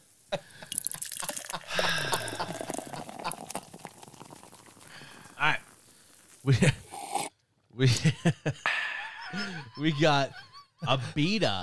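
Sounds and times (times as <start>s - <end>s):
beer pouring into a glass: 0.6s - 7.3s
laughter: 1.3s - 3.6s, 7.8s - 11.3s
speech: 6.5s - 6.8s, 7.8s - 8.6s, 9.8s - 11.6s.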